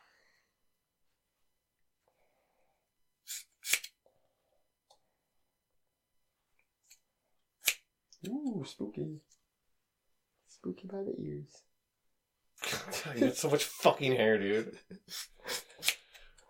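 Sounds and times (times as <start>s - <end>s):
scissors snipping hair during a trim: 3.3s - 4.0s, 7.6s - 8.4s, 15.8s - 16.2s
speech: 8.2s - 9.4s, 10.6s - 11.7s, 12.7s - 16.0s.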